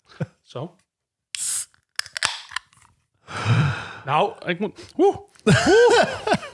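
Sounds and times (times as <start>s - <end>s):
speech: 0.2s - 0.8s, 4.0s - 6.5s
rush of fizzing gas from citrus drink can: 1.4s - 2.6s
can of citrus drink being opened: 1.4s - 2.9s
laughter: 5.4s - 6.5s.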